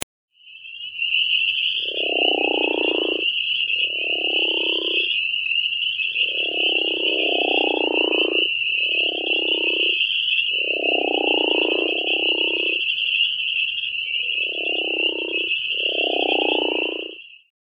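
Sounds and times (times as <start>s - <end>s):
crawfish frog calling: 0.4s - 17.5s.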